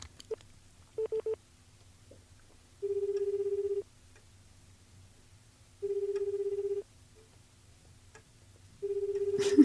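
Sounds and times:
faint low hum: 0:00.0 - 0:09.6
phone dialing beeps: 0:01.0 - 0:01.4, 0:02.8 - 0:03.8, 0:05.8 - 0:06.8, 0:08.8 - 0:09.4.

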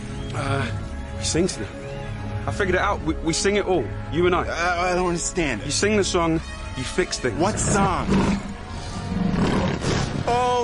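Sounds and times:
speech: 0:00.4 - 0:08.5, 0:10.3 - 0:10.6
tiger roaring: 0:07.5 - 0:10.2.

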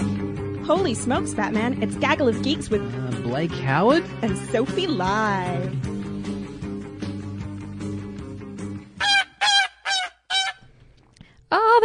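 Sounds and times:
low droning music: 0:00.0 - 0:09.2
speech: 0:00.7 - 0:05.9
geese honking: 0:09.0 - 0:10.6.

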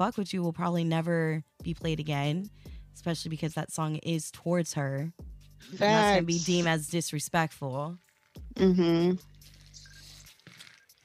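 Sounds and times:
speech: 0:00.0 - 0:08.0, 0:08.6 - 0:09.3
water bottle squished and handled: 0:09.2 - 0:11.0.

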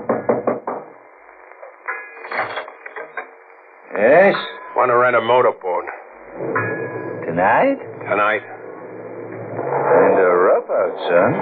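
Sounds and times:
firm knocks on a wooden door of a boat-rental place at an ocean boat landing: 0:00.0 - 0:00.9
speech: 0:04.0 - 0:06.7, 0:07.3 - 0:08.6, 0:10.1 - 0:11.4.

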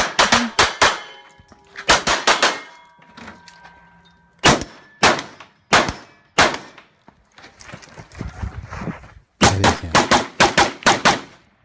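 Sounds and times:
bright metallic clangs from shot targets: 0:00.1 - 0:06.4
rapid gunfire bursts from tactical shooting: 0:01.9 - 0:02.7, 0:04.4 - 0:06.8, 0:09.4 - 0:11.4.

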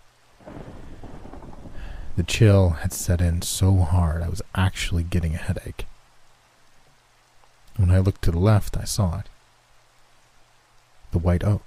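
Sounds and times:
steady rain: 0:00.0 - 0:11.6
deep rumble of thunder: 0:00.4 - 0:05.4
speech: 0:02.2 - 0:05.9, 0:07.8 - 0:09.3, 0:11.1 - 0:11.6.

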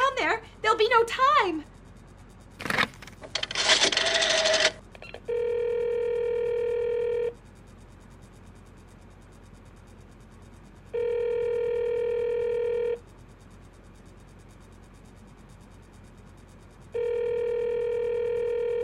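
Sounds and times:
speech: 0:00.8 - 0:01.7
telephone handling clatter: 0:02.6 - 0:04.8
electronic telephone ringing tones: 0:03.4 - 0:07.3, 0:11.0 - 0:13.0, 0:17.0 - 0:18.8.

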